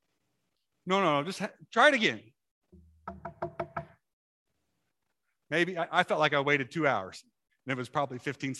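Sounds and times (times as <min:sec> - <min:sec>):
speech: 0:00.8 - 0:02.4, 0:05.5 - 0:08.5
knocks on a wooden door: 0:03.1 - 0:04.0.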